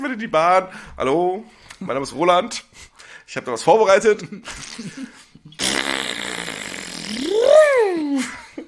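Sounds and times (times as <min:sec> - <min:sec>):
speech: 0:00.0 - 0:05.7, 0:07.1 - 0:08.4
long loud fart: 0:05.6 - 0:07.6.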